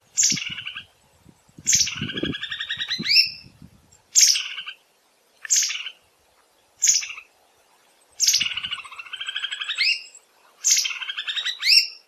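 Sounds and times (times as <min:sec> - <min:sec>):
White-whiskered Laughingthrush calls: 0:00.2 - 0:00.9, 0:01.7 - 0:03.4, 0:04.2 - 0:04.8, 0:05.4 - 0:06.0, 0:06.8 - 0:07.3, 0:08.2 - 0:12.0.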